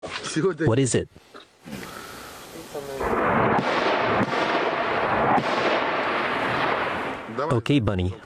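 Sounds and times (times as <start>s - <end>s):
speech: 0.4s - 1.8s, 7.4s - 8.2s
sharp punchy explosions: 2.6s - 7.6s
artillery blasts: 2.8s - 7.6s.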